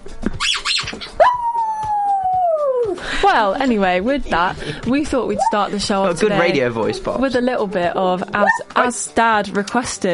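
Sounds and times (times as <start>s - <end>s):
dog howling: 1.2s - 3.0s, 5.4s - 5.7s, 8.4s - 8.9s
speech: 3.4s - 10.1s.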